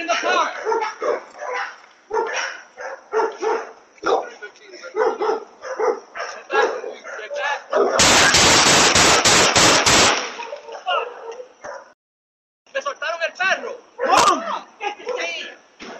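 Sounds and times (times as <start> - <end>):
dog barking: 0.1 - 8.1, 10.4 - 12.0, 13.6 - 14.2, 15.0 - 15.9
sharp loud bang: 8.0 - 10.5.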